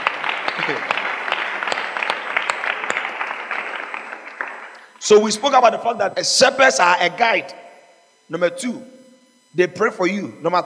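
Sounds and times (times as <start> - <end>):
large group clapping: 0.0 - 5.4
speech: 0.6 - 1.0, 5.1 - 7.6, 8.3 - 10.6.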